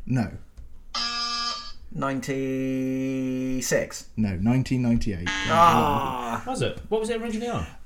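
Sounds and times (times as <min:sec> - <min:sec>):
speech: 0:00.1 - 0:00.5, 0:02.0 - 0:07.8
electronic quiz buzzer: 0:00.9 - 0:01.8, 0:05.3 - 0:06.0.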